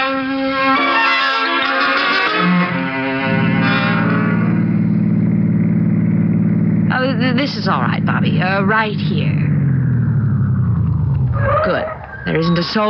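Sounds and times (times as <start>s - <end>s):
car engine revving and driving along: 1.0s - 12.8s
speech: 7.5s - 9.5s, 11.4s - 12.8s.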